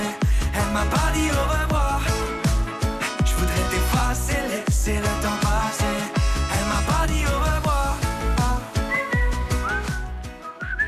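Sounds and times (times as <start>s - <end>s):
loud reggae backing groove of thumping beats and sustained instruments: 0.0s - 10.8s
whistled melody with sliding notes in a reggae song: 8.7s - 10.8s.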